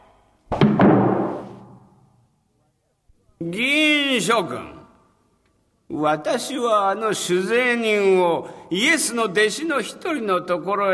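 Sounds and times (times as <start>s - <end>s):
heavy door slamming shut in a large room: 0.5s - 1.8s
speech: 3.4s - 4.8s, 5.9s - 10.9s.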